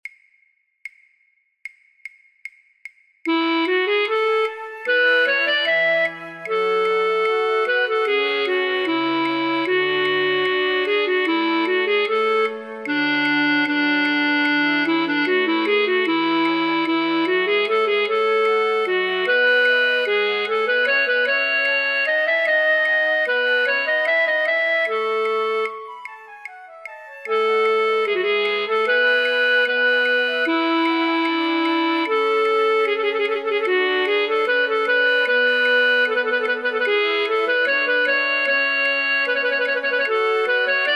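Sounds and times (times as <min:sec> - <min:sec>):
flute choir playing for flute practice tracks: 0:03.3 - 0:40.9.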